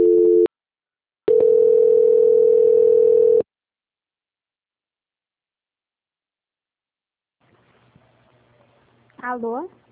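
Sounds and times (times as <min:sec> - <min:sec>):
telephone line tones during a call transfer: 0:00.0 - 0:00.5, 0:01.3 - 0:03.4.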